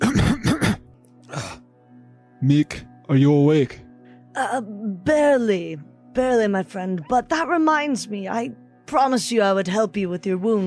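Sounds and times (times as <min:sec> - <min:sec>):
person coughing while getting up from floor: 0:00.0 - 0:01.6
speech: 0:02.4 - 0:03.8, 0:04.4 - 0:10.6.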